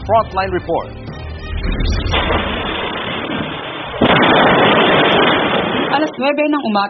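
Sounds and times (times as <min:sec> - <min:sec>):
house explosion caused by a leaking LPG tank: 0:00.0 - 0:06.6
speech: 0:00.1 - 0:01.0, 0:05.9 - 0:06.8.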